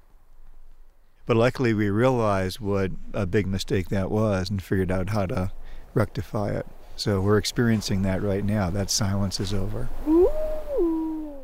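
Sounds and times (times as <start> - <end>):
speech: 1.3 - 10.1
wolf howling: 10.0 - 11.3.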